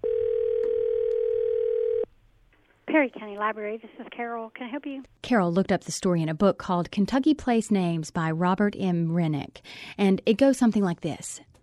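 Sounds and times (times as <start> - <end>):
telephone ringback tone of a call to a library: 0.0 - 2.1
speech: 3.0 - 11.5.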